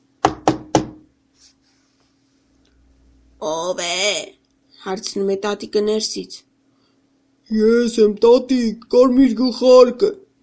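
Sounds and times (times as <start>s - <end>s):
faint low hum: 0.0s - 10.4s
knocking on a door: 0.2s - 1.1s
speech: 3.4s - 6.5s, 7.5s - 10.2s.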